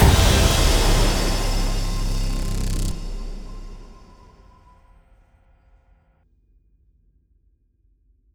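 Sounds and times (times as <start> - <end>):
big win end smash: 0.0 - 4.5.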